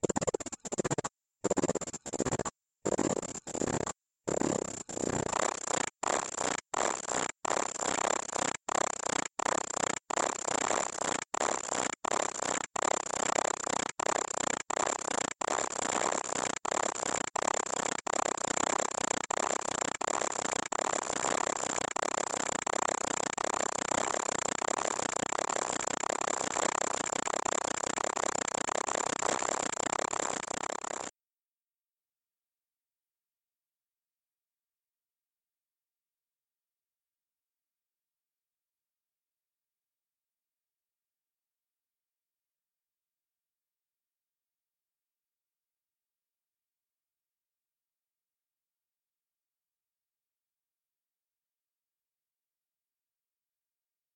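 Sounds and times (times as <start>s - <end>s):
PVC tube: 0.0s - 31.2s.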